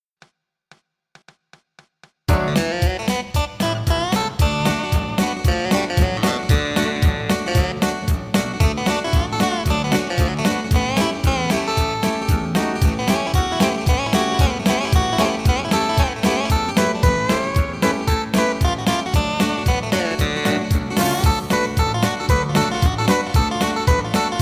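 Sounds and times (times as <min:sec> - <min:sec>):
short bluegrass picking guitar solo: 0:02.3 - 0:24.4.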